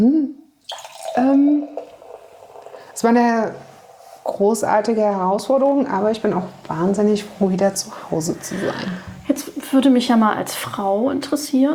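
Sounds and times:
speech: 0:00.0 - 0:00.3, 0:01.2 - 0:01.6, 0:03.0 - 0:03.7, 0:04.3 - 0:11.7
champagne being poured into a glass: 0:00.6 - 0:04.4.

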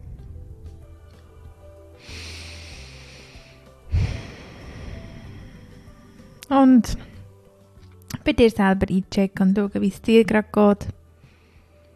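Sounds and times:
slow deep breaths during a guided meditation: 0:01.4 - 0:06.4, 0:11.2 - 0:11.9
speech: 0:06.5 - 0:07.1, 0:08.2 - 0:11.0.

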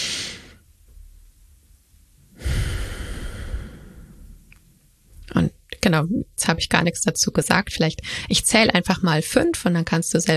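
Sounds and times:
slow breathing in and out: 0:02.3 - 0:04.7
speech: 0:05.9 - 0:10.3.

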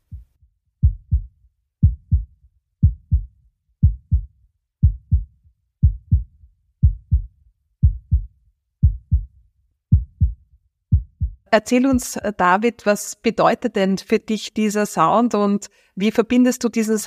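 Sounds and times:
steady human heartbeat: 0:00.0 - 0:12.2
speech: 0:11.5 - 0:17.0.

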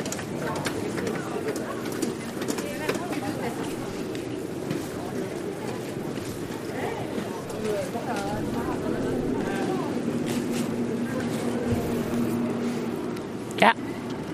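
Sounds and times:
scattered voices: 0:00.0 - 0:13.3
garbage collection boat engine droning: 0:00.0 - 0:14.3.

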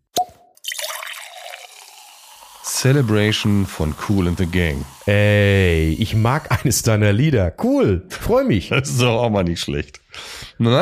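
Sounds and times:
cork popping from a bottle at a celebration: 0:00.0 - 0:02.5
fizzing hiss: 0:00.7 - 0:06.8
speech: 0:02.7 - 0:10.8.

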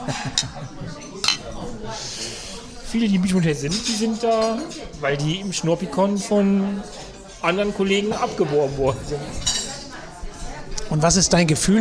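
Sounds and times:
murmur of voices: 0:00.0 - 0:11.8
speech: 0:00.1 - 0:01.1, 0:01.8 - 0:09.5, 0:10.9 - 0:11.8
glasses clinking in a toast: 0:00.4 - 0:00.6, 0:01.2 - 0:01.6.

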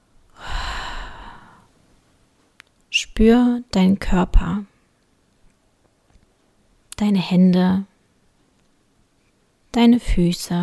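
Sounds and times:
deep breath in and out: 0:00.3 - 0:01.7
speech: 0:03.2 - 0:04.7, 0:07.0 - 0:07.9, 0:09.8 - 0:10.6.

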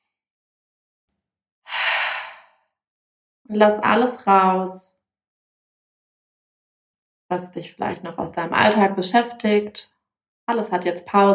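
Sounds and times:
person breathing deeply in through the nose and out through the mouth: 0:01.7 - 0:02.6
speech: 0:03.5 - 0:04.9, 0:07.3 - 0:09.9, 0:10.5 - 0:11.3.

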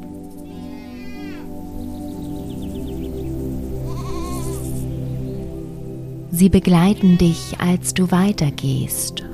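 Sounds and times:
goats bleating beside an uphill path among olive trees: 0:00.5 - 0:01.5, 0:03.8 - 0:04.8, 0:07.0 - 0:07.8
speech: 0:06.4 - 0:09.3.

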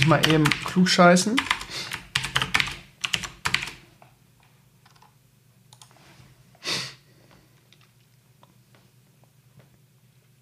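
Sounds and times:
typing comments on a computer keyboard: 0:00.0 - 0:00.8, 0:01.4 - 0:03.8
speech: 0:00.0 - 0:01.9.

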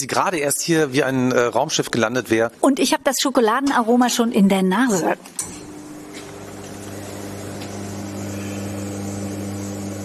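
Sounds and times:
speech: 0:00.0 - 0:05.6
espresso machine pumping with low mechanical hum and soft hiss: 0:05.7 - 0:10.0.

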